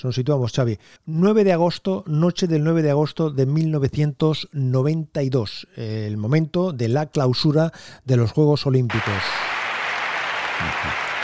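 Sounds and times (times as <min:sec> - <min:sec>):
speech: 0:00.0 - 0:09.6
large crowd applauding at the closing ceremony of the 1992 Barcelona Olympic Games: 0:08.9 - 0:11.2.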